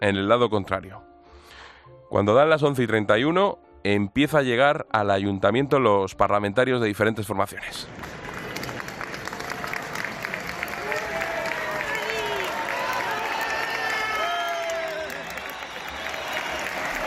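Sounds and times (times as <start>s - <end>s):
speech: 0.0s - 1.1s, 2.1s - 8.2s
large outdoor crowd applauding: 7.9s - 17.0s.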